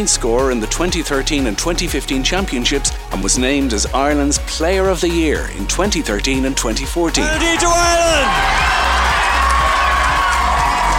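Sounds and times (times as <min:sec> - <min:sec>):
speech: 0:00.0 - 0:08.7
large stadium crowd roaring and cheering: 0:07.2 - 0:10.9
whoops rising above the crowd: 0:07.2 - 0:10.9.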